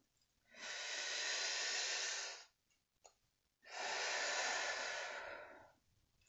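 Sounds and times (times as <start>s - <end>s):
deep breaths in and out during a guided breathing exercise: 0.5s - 2.6s, 3.6s - 5.9s.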